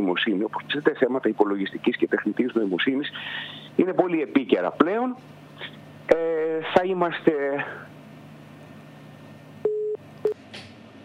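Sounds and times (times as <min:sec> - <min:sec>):
speech: 0:00.0 - 0:07.9
telephone busy signal on a failed call: 0:09.6 - 0:10.0.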